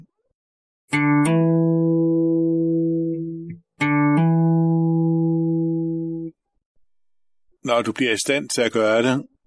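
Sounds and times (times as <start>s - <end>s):
speech: 0.9s - 1.1s, 7.6s - 9.3s
guitar hammer-on from open fifth string to second fret: 0.9s - 6.3s.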